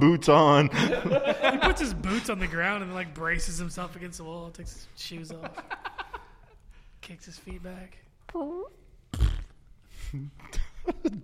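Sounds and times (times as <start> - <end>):
speech: 0.0 - 5.8, 7.0 - 9.2, 10.1 - 11.2
laughter: 0.7 - 2.6, 5.3 - 6.6
short loud low rumbling fart: 9.1 - 9.6.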